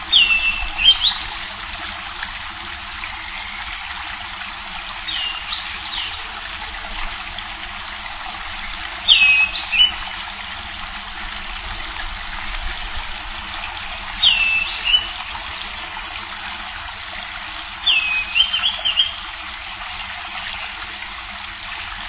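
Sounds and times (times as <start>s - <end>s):
Schiffornis virescens: 0.1s - 1.3s, 9.1s - 10.0s, 14.2s - 15.2s, 17.9s - 19.2s.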